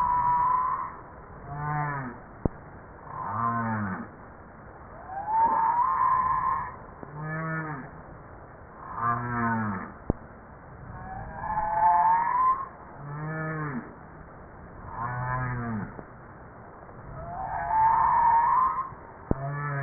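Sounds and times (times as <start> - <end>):
humpback whale rising whistled sweep: 0.0 - 1.0, 5.0 - 6.8, 10.9 - 12.8, 17.1 - 19.0
humpback whale harmonic groaning calls: 0.0 - 2.2, 3.1 - 4.1, 5.0 - 7.9, 8.8 - 10.0, 11.1 - 13.9, 14.9 - 16.0, 17.2 - 19.8.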